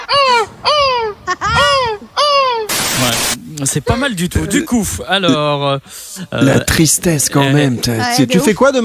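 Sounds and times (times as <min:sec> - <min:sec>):
person imitating a seagull's cry at a seagull-cry championship: 0:00.1 - 0:02.7
speech: 0:03.7 - 0:08.8.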